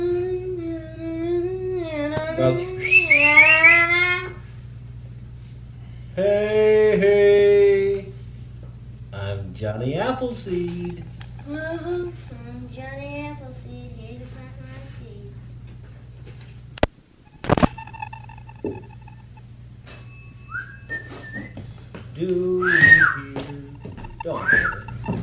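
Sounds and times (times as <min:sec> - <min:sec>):
steady low hum: 0:00.0 - 0:25.2
speech: 0:02.4 - 0:02.7, 0:09.8 - 0:12.1
train engine whistle: 0:22.6 - 0:23.3.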